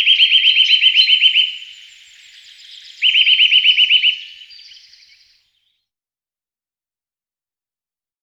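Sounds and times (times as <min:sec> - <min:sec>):
Eurasian nuthatch song: 0:00.0 - 0:05.4.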